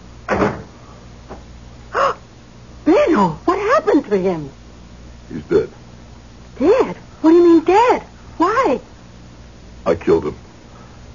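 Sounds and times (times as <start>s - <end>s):
door closing: 0.3s - 0.7s
speech: 3.2s - 4.6s, 5.3s - 5.8s, 6.6s - 8.1s, 8.7s - 8.9s, 9.8s - 10.5s.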